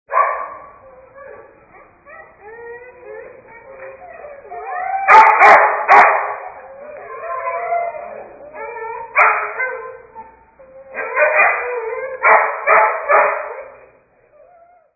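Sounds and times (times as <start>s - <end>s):
dogs barking: 0.1s - 0.9s, 3.7s - 7.6s, 9.0s - 13.9s.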